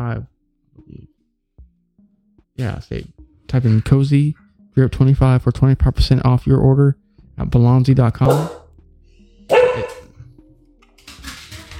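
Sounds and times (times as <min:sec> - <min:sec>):
speech: 0:00.0 - 0:00.9, 0:02.6 - 0:08.6
loud sharp dog bark: 0:08.2 - 0:08.7, 0:09.5 - 0:10.1.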